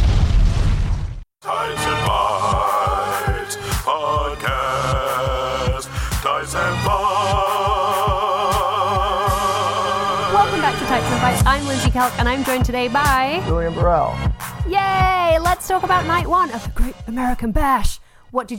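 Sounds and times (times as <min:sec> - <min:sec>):
explosion blast: 0:00.0 - 0:01.2
upbeat music with a steady punchy beat: 0:01.4 - 0:17.8
speech: 0:10.8 - 0:18.5.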